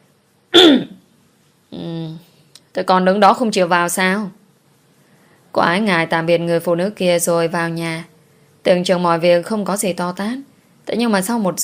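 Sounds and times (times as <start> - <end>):
man clearing his throat: 0.6 - 1.0
speech: 2.8 - 4.4, 5.5 - 11.6.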